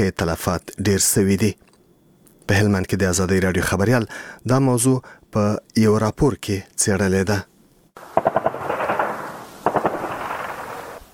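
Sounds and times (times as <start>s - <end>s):
speech: 0.0s - 1.7s, 2.5s - 7.5s
heavy automatic gunfire during a night-time militant attack near Lashkar Gah in Helmand: 8.0s - 11.0s.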